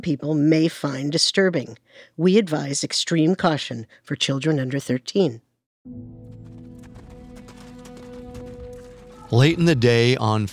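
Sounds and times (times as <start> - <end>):
speech: 0.0 - 6.4, 9.3 - 10.5
horse's hooves clip-clopping pulling a carriage: 6.1 - 10.1
street ambience: 6.2 - 10.5.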